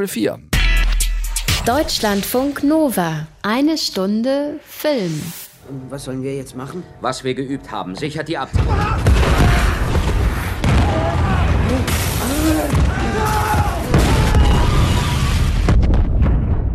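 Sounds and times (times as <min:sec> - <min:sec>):
speech: 0:00.0 - 0:00.5, 0:01.6 - 0:09.6
loud heavy explosion aboard a nuclear submarine: 0:09.0 - 0:16.7.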